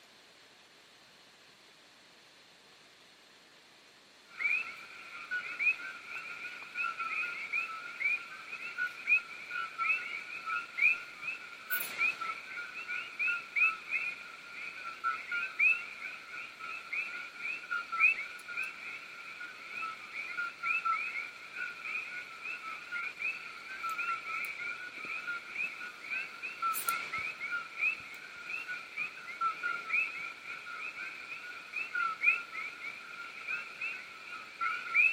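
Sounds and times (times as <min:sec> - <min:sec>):
dense chorus of coqui frogs calling: 0:04.2 - 0:35.1.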